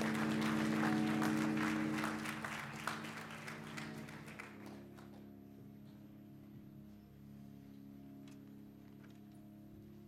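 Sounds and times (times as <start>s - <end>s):
audience clapping hands: 0.0s - 5.1s.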